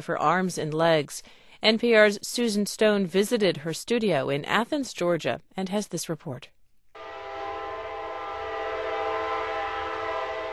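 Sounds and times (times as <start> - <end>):
speech: 0.0 - 6.6
train horn blaring in a long steady chord: 7.0 - 10.5.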